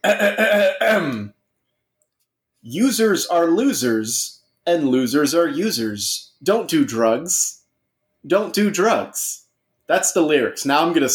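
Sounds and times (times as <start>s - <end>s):
speech: 0.0s - 1.2s, 2.6s - 7.6s, 8.2s - 11.1s
throat clearing: 0.0s - 1.3s.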